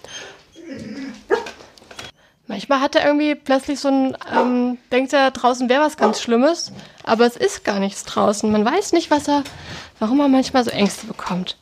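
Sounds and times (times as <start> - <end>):
dog whiny yelp: 0.1 - 1.6, 6.0 - 6.3
dog barking: 1.3 - 1.6, 4.3 - 4.6, 6.0 - 6.3
speech: 2.6 - 11.6.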